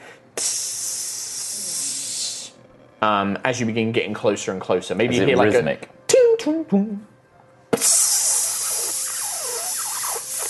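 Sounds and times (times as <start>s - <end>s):
faint high-pressure hissing aboard a station: 0.0s - 2.6s, 7.8s - 10.4s
speech: 3.0s - 7.1s.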